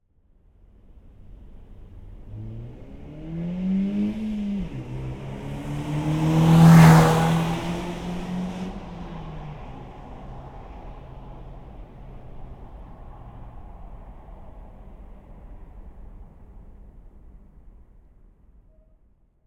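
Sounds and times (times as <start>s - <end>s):
Nissan Qashqai car accelerating past at 80 kmph: 2.0s - 15.2s.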